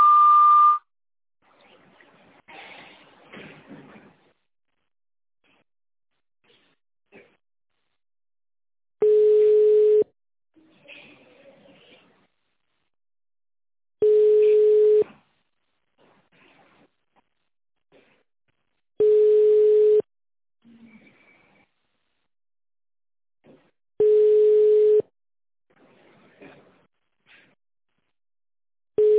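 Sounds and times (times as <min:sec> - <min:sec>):
telephone line tone on a call to a sanatorium: 0:00.0 - 0:00.8, 0:09.0 - 0:10.1, 0:14.0 - 0:15.0, 0:19.0 - 0:20.0, 0:24.0 - 0:25.0, 0:29.0 - 0:29.1.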